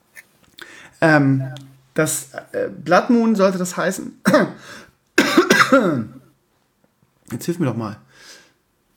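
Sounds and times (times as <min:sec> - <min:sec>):
speech: 0:01.0 - 0:04.9, 0:05.7 - 0:06.2, 0:07.3 - 0:08.0
person clearing a frog in the throat: 0:05.2 - 0:05.9
person coughing: 0:05.2 - 0:06.0.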